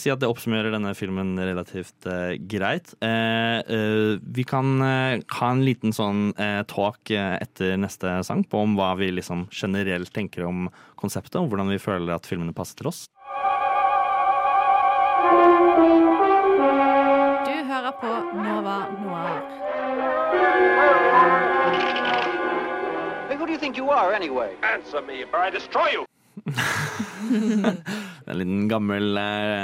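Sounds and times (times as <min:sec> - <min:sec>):
speech: 0:00.0 - 0:13.2, 0:23.5 - 0:29.6
sustained droning synth chords of a podcast intro jingle: 0:13.2 - 0:25.4
voices speaking dramatic lines: 0:17.4 - 0:22.5, 0:23.2 - 0:26.1
person laughing: 0:26.4 - 0:28.1.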